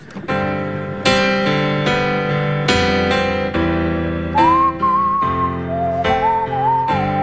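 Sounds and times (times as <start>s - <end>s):
steady full instrumental backing chords: 0.0s - 7.2s
person whistling a wavering song melody: 4.3s - 7.2s.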